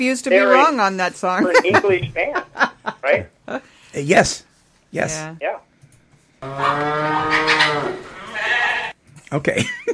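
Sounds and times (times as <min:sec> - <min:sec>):
speech: 0:00.0 - 0:05.6, 0:06.4 - 0:08.0, 0:09.3 - 0:09.9
cow mooing: 0:06.4 - 0:08.9.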